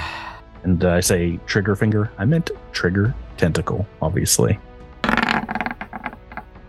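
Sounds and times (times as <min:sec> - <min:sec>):
speech: 0:00.6 - 0:04.7
dice clattering onto a hard table: 0:05.0 - 0:06.5.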